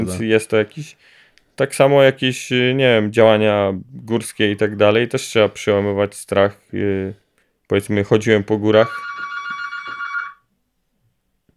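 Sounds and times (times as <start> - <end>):
speech: 0.0 - 9.1
faint low noise: 0.0 - 11.5
telephone ringing with an electronic trill: 8.6 - 10.5.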